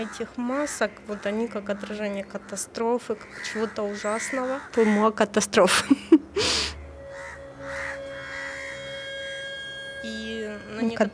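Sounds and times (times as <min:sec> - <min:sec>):
speech: 0:00.0 - 0:06.6, 0:10.9 - 0:11.1
faint steady hum: 0:00.0 - 0:11.1
crows cawing: 0:01.0 - 0:05.2, 0:06.4 - 0:10.0.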